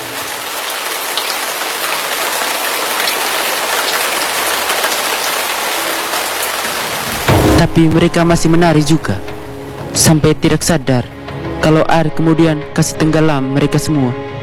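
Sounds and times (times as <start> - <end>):
heavy rain drumming on surfaces: 0.0 - 11.2
speech: 7.8 - 9.3, 10.0 - 14.3.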